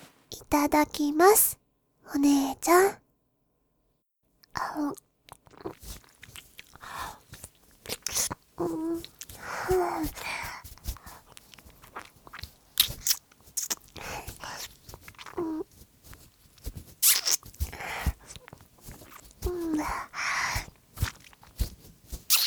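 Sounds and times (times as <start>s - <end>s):
speech: 0.5s - 3.0s, 4.6s - 5.0s, 8.6s - 10.4s
wet licking and sucking on a ring finger: 4.7s - 22.4s.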